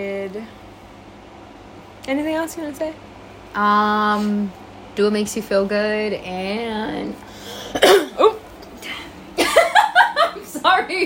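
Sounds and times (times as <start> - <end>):
speech: 0.0 - 0.7, 2.1 - 8.0
woman coughing in short harsh bursts: 7.6 - 9.9.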